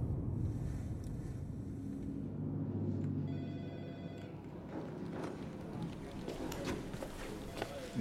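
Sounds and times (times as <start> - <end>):
rumbling windy background: 0.0 - 7.9
telephone ringing with an electronic trill: 3.3 - 4.5.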